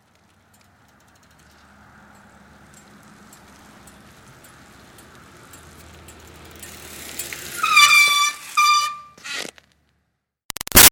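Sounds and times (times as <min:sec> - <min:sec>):
retro cruiser bicycle pedaling uphill: 0:00.0 - 0:09.8
retro cruiser bicycle brake squeak: 0:07.4 - 0:09.6.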